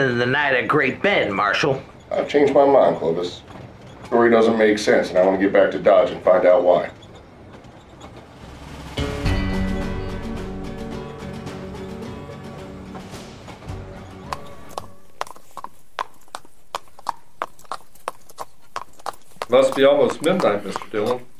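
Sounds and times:
speech: 0.0s - 3.5s, 4.1s - 7.0s, 19.5s - 21.3s
horses' hooves clip-clopping at a walk: 0.0s - 9.0s, 11.0s - 21.3s
music: 8.4s - 15.2s.

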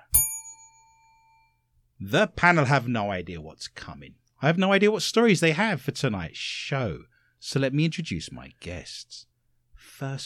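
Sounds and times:
single bright bell struck by a host: 0.0s - 1.6s
speech: 2.0s - 10.2s.

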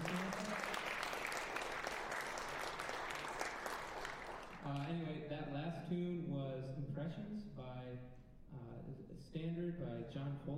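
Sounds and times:
audience applause: 0.0s - 4.9s
speech: 5.7s - 10.5s.

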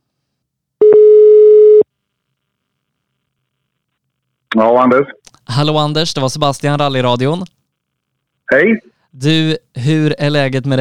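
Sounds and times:
telephone ringing tone while placing a call: 0.8s - 1.8s
speech: 4.6s - 7.6s, 8.5s - 10.7s.

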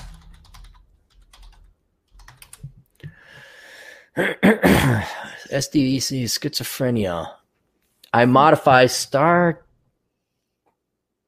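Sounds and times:
typing on a computer keyboard at a command line: 0.0s - 2.8s
speech: 4.2s - 7.4s, 8.1s - 9.6s.

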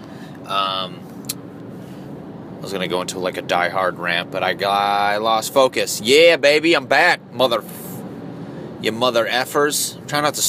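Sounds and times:
car cruising on a highway behind a gas truck, heard from inside: 0.0s - 10.4s
speech: 0.5s - 1.0s, 2.6s - 7.8s, 8.8s - 10.4s.

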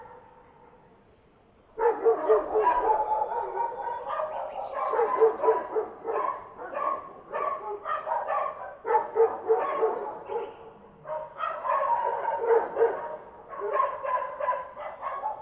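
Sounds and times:
dog barking in rapid irregular bursts: 0.0s - 0.4s, 1.8s - 15.4s.

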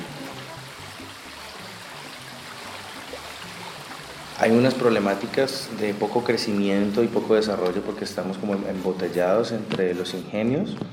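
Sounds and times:
river stream flowing water: 0.0s - 9.7s
speech: 4.4s - 10.9s.

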